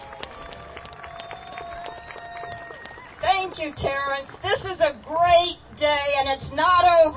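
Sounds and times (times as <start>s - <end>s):
audience clapping at a low-wage workers' rally in Kansas City: 0.0s - 4.6s
speech: 3.5s - 7.1s.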